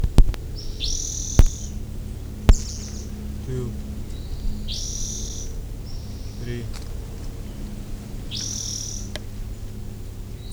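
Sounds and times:
sharp clicks: 0.0 - 1.8, 2.4 - 3.2
rufous-sided towhee giving a strange whistled call: 0.6 - 9.8.

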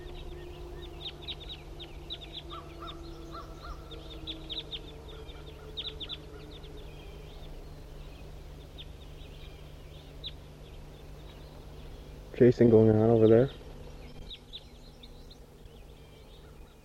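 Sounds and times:
flock of wild birds cawing in the early morning: 0.0 - 12.2, 15.7 - 16.8
low hum: 0.0 - 16.8
speech: 12.4 - 13.6.

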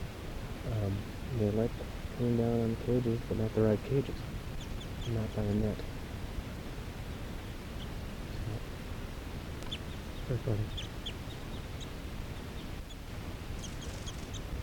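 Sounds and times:
outdoor hiss: 0.0 - 14.6
speech: 0.9 - 4.4, 5.0 - 5.9, 10.3 - 10.8
crossbills chirping in trees: 4.0 - 5.7, 9.5 - 14.6.

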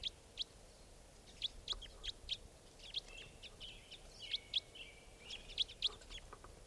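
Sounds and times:
sharp high-pitched bird calls of the Type 5 call type: 1.2 - 6.4.

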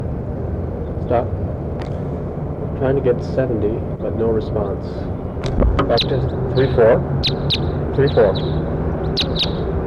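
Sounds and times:
low rumble: 0.2 - 7.1
speech: 1.1 - 1.4, 2.8 - 8.7
bird chirps: 5.5 - 9.7.

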